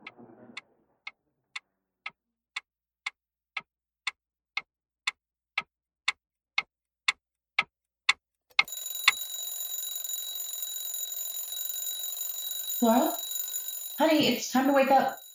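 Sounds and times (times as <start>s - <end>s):
clock ticking: 3.0s - 15.3s
alarm clock ringing, high-pitched electronic: 8.6s - 15.3s
speech: 12.8s - 13.2s, 14.0s - 15.2s.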